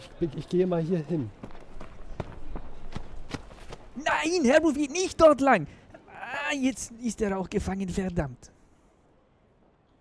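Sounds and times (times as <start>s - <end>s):
speech: 0.2s - 1.6s, 4.2s - 5.8s, 6.5s - 8.5s
footsteps of someone running away: 1.4s - 4.0s.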